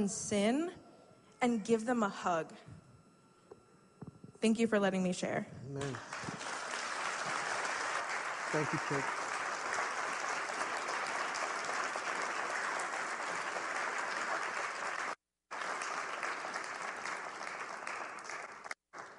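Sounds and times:
speech: 0.0s - 0.8s, 1.4s - 2.8s, 4.4s - 6.2s, 8.5s - 9.2s
audience applauding: 5.8s - 19.1s.

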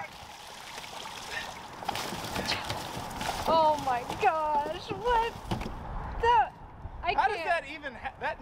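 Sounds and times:
mullet fish splashing in water: 0.1s - 4.2s
speech: 3.5s - 5.5s, 6.2s - 6.4s, 7.1s - 8.4s.

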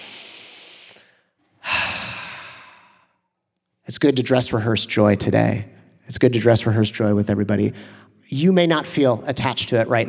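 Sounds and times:
deep breathing during a spoken prayer: 0.0s - 3.3s, 7.7s - 8.2s
speech: 3.9s - 10.0s.

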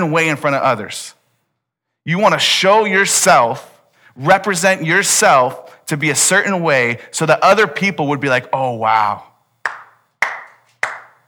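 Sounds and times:
speech: 0.0s - 1.2s, 2.0s - 9.8s
hand claps: 9.6s - 11.2s.

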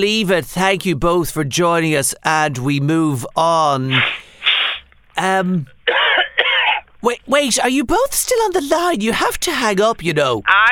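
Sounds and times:
speech: 0.0s - 4.3s, 5.2s - 6.0s, 7.0s - 10.7s
harsh coughing on air: 5.9s - 6.9s.

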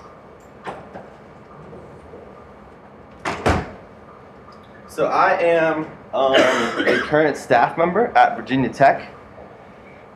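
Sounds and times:
door closing with latch: 3.2s - 3.8s
speech: 5.0s - 9.2s.

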